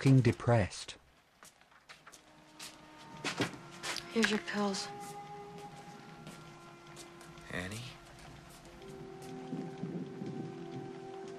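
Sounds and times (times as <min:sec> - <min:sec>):
speech: 0:00.0 - 0:01.0, 0:04.2 - 0:05.0, 0:07.6 - 0:08.0
steady rain pouring down outside: 0:00.0 - 0:11.3
faint low tonal sounds: 0:02.3 - 0:11.3
sweeping tone: 0:02.7 - 0:11.3.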